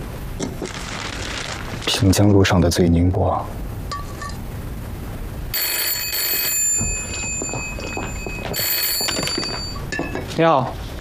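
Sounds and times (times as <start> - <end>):
speech: 1.9 - 3.6, 10.4 - 10.9
telephone bell ringing: 5.5 - 9.9.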